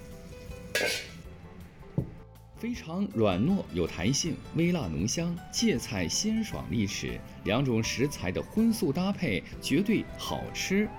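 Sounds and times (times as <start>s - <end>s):
metallic scrape of the wok: 0.0s - 1.3s
pig large intestine and wrinkled-skin chili peppers stir-fried in rapeseed oil in a hot wok: 0.0s - 1.7s
speech: 0.8s - 1.1s, 2.6s - 10.9s.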